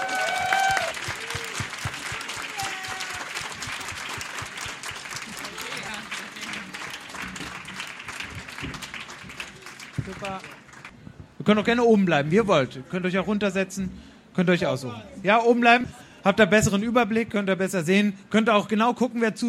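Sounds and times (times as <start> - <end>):
cheers: 0.0 - 6.0
large audience clapping: 0.0 - 11.0
speech: 11.5 - 19.4.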